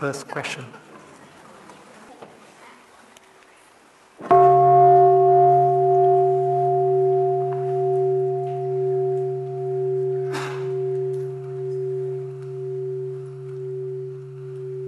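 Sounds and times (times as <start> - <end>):
speech: 0.0 - 0.9
single bell struck and ringing with a deep sustained hum: 4.3 - 14.8.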